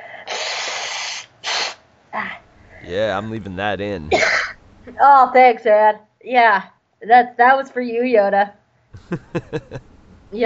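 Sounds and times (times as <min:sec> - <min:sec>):
person blowing their nose: 0:00.3 - 0:01.8
speech: 0:02.2 - 0:10.4
laughter: 0:02.9 - 0:04.4, 0:09.0 - 0:10.4.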